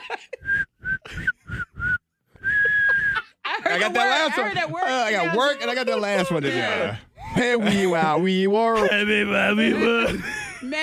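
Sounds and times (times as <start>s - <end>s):
speech: 0.1s - 0.5s, 3.7s - 10.8s
person whistling a tune: 0.4s - 3.3s.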